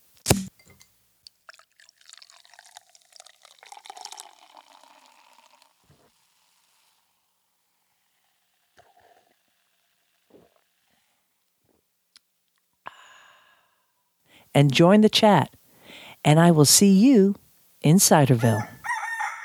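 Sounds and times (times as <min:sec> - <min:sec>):
cider bottle opening pop: 0:00.2 - 0:00.9
small clinks: 0:00.3 - 0:01.0
drips: 0:00.3 - 0:07.0
fizzy cider pouring into a glass: 0:00.3 - 0:10.9
speech: 0:14.6 - 0:15.6, 0:16.2 - 0:18.8.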